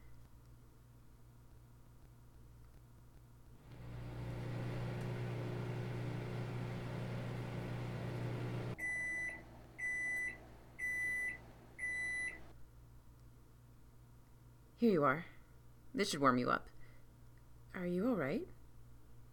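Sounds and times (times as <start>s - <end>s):
microwave oven humming while heating leftovers: 3.6s - 12.5s
speech: 14.8s - 15.3s, 15.9s - 16.7s, 17.8s - 18.6s.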